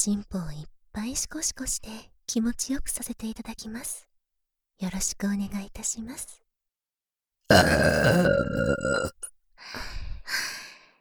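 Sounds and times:
speech: 0.0s - 4.1s, 4.8s - 6.4s, 7.5s - 10.5s
person burping deeply: 7.5s - 9.2s.

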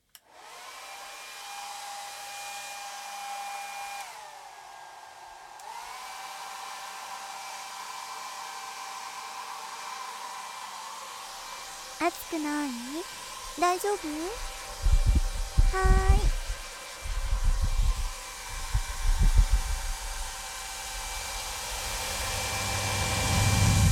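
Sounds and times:
hair dryer blowing: 0.1s - 23.9s
speech: 12.0s - 14.9s, 15.7s - 16.3s.

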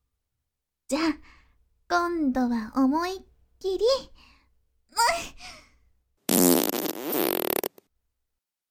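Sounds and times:
speech: 0.9s - 4.3s
farts: 6.3s - 7.8s.

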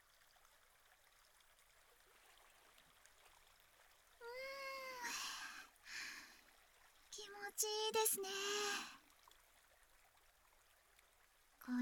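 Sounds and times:
small stream flowing: 0.0s - 11.8s
speech: 7.6s - 9.0s.

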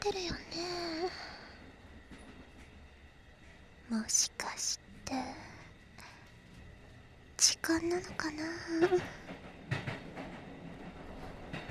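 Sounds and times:
speech: 0.0s - 1.3s, 3.9s - 5.5s, 7.4s - 9.4s
train rumbling on rails heard from inside the carriage: 0.0s - 11.6s
train wheels clacking over track joints: 7.6s - 11.6s.

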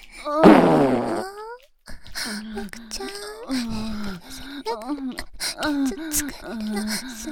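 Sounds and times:
fart: 0.4s - 1.3s
speech: 6.2s - 7.3s.

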